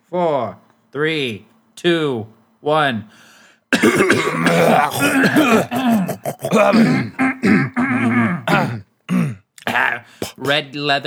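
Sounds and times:
speech: 0.1s - 11.0s
harsh rough coughing: 3.7s - 10.6s
people clearing throats while warming up their voices: 3.7s - 10.6s
short voiced grunts: 3.8s - 10.6s.

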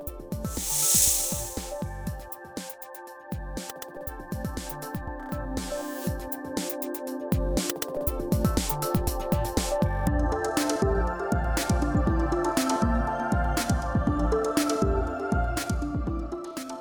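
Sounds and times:
music: 0.0s - 16.7s
copperhead snake hissing: 0.5s - 1.8s.

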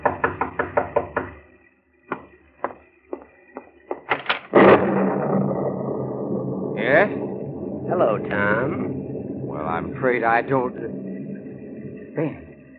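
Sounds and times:
sharp knocking on a door on a stormy night: 0.0s - 1.4s
sustained rushing noise: 4.6s - 12.7s
speech: 9.8s - 11.1s, 12.2s - 12.4s.

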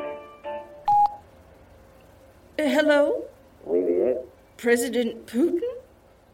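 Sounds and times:
touch-tone beep from a telephone keypad: 0.9s - 1.2s
speech: 2.8s - 3.2s, 4.6s - 5.7s.

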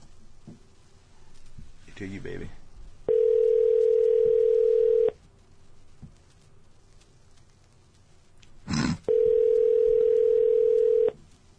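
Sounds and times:
speech: 2.0s - 2.6s
telephone ringback tone on an outgoing call: 3.1s - 5.2s, 9.1s - 11.2s.

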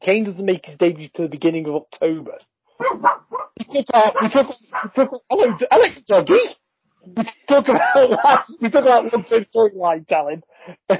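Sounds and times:
speech: 0.0s - 10.9s
dog barking and yipping excitedly: 2.8s - 5.8s, 7.8s - 8.6s
laughter: 3.6s - 6.1s, 7.1s - 9.6s, 10.8s - 10.9s.

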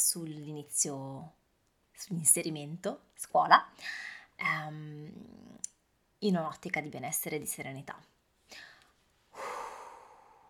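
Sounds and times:
speech: 0.0s - 1.4s, 2.0s - 8.7s
deep breath with sharp intake and breathy exhale: 8.5s - 10.4s.

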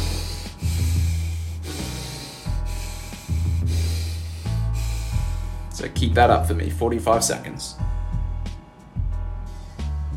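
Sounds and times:
rhythmic breathing in and out through the nose at an exercise tempo: 0.0s - 5.8s, 9.1s - 10.1s
speech: 5.8s - 7.8s.

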